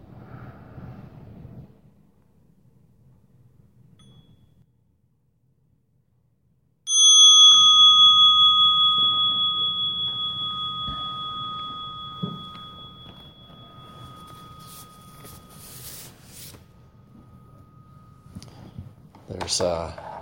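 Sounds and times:
meditation bell ringing: 6.9 - 19.3
speech: 19.4 - 20.0.

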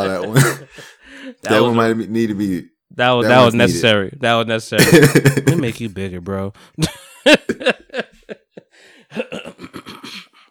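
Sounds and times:
speech: 0.0 - 0.6, 1.5 - 7.7
laughter: 0.0 - 1.9, 4.8 - 5.8, 6.8 - 10.1
man clearing his throat: 0.1 - 0.9, 4.8 - 5.8, 9.2 - 10.3.

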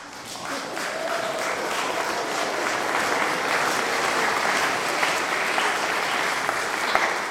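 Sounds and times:
crowd applauding: 0.0 - 7.2
laughter: 0.0 - 7.2.

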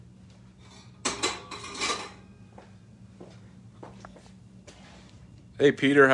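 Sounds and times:
metal pot set down on a stovetop: 1.0 - 2.2
speech: 5.6 - 6.1.

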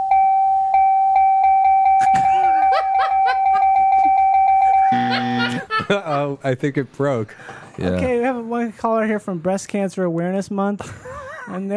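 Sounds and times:
tally bell dinging: 0.2 - 5.7
people laughing and chattering: 2.0 - 7.9
speech: 6.4 - 11.7.

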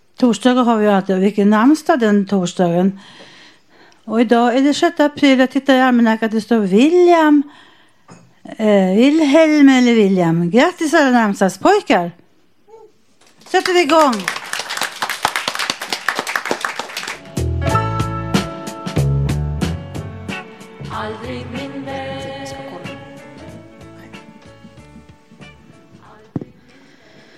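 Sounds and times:
speech: 0.2 - 3.3, 4.0 - 12.2, 13.5 - 14.4
audience clapping: 13.2 - 17.6
upbeat music jingle with a strong beat: 17.2 - 25.9.

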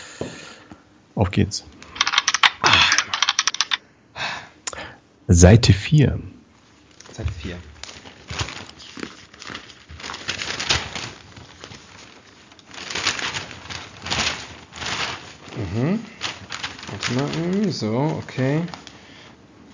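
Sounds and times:
speech: 1.2 - 1.8, 5.3 - 6.4, 7.2 - 7.7, 17.8 - 18.8
dice rolled across a hard surface: 2.0 - 3.8
paper rustling and crinkling: 6.6 - 19.7.

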